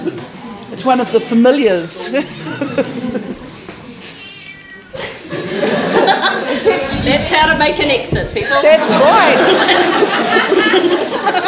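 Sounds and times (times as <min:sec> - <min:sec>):
faint voices murmuring: 0:00.0 - 0:11.1
speech: 0:00.8 - 0:03.3, 0:06.6 - 0:11.4
laughter: 0:02.0 - 0:04.2, 0:04.9 - 0:11.4
cat meowing: 0:04.0 - 0:05.1.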